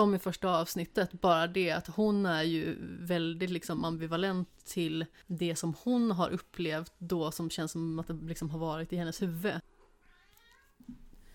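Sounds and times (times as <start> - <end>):
speech: 0.0 - 9.7
cat meowing: 10.0 - 10.9.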